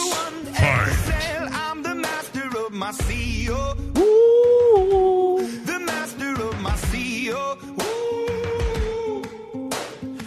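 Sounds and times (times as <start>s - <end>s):
loud pop rock song with sung vocals: 0.0s - 10.2s
person singing a vocal line: 0.0s - 10.2s
punchy drum hits: 0.5s - 1.5s
deep bass: 0.6s - 1.4s.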